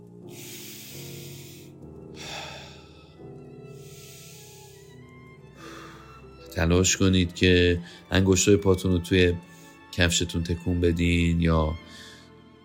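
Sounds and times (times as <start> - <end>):
soft sustained droning music: 0.0 - 12.6
deep breathing at end of meditation: 0.2 - 6.4, 7.8 - 8.1, 9.4 - 9.9, 11.8 - 12.4
speech: 6.6 - 12.1.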